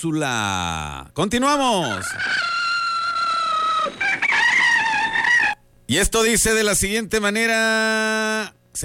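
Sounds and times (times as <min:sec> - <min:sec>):
speech: 0:00.0 - 0:02.6, 0:05.9 - 0:08.8
rooster crowing: 0:01.9 - 0:05.6.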